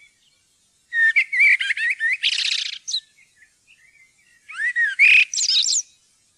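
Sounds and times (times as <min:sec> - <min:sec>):
common blackbird singing warbling phrases: 0:00.0 - 0:06.3.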